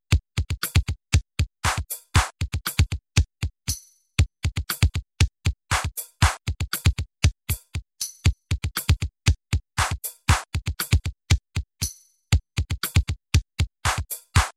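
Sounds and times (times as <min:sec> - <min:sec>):
drum pattern: 0:00.4 - 0:14.5.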